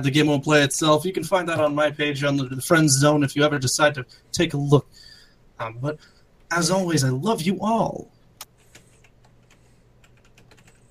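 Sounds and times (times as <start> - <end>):
speech: 0.0 - 8.1
typing a chat message on a computer keyboard: 8.5 - 10.8.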